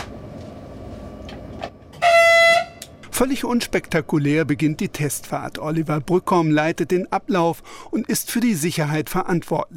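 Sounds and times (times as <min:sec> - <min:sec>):
short train whistle at a station before departure on a remote-controlled test run: 0:02.0 - 0:02.9
speech: 0:03.2 - 0:09.7.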